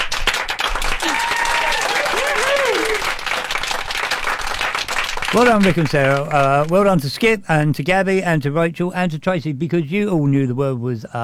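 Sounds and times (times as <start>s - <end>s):
dense applause from a group: 0.0s - 7.0s
faint voices and cheers: 1.0s - 3.2s
speech: 5.3s - 11.2s.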